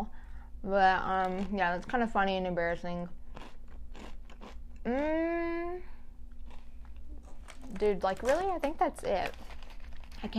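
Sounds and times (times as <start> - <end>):
speech: 0.7 - 3.5, 4.8 - 5.9, 7.7 - 9.5
crunching potato chips: 3.3 - 4.6, 6.4 - 10.3.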